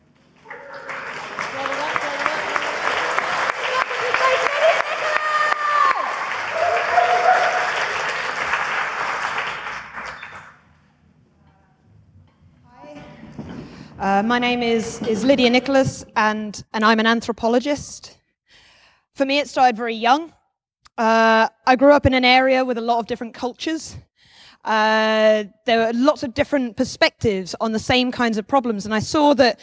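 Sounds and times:
large audience applause: 0.4s - 10.6s
whoops: 3.7s - 7.9s
speech: 14.2s - 18.1s, 19.2s - 20.4s, 21.0s - 29.6s.

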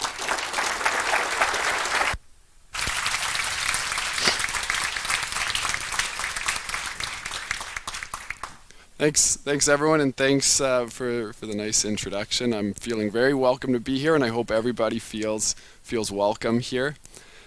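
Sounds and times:
crowd applauding: 0.0s - 2.2s, 2.8s - 8.7s
speech: 9.0s - 17.1s.

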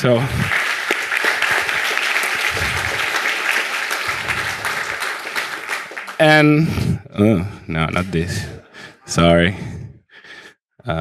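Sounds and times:
speech: 0.0s - 0.6s, 6.2s - 9.7s
crowd applause: 0.0s - 6.7s.

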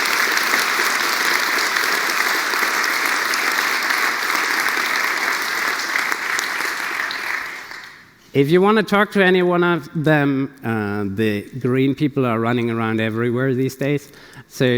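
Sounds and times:
large crowd applauding event organizers: 0.0s - 8.2s
speech: 8.4s - 14.7s.

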